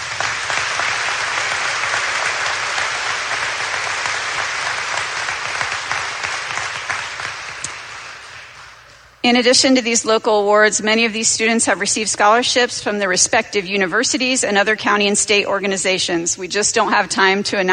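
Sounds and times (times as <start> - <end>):
large audience applauding award recipients: 0.0 - 9.0
speech: 9.2 - 17.7.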